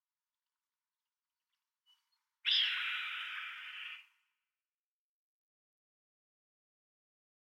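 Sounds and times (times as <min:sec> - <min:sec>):
red-tailed hawk giving a hoarse rasping scream: 0:02.5 - 0:04.1.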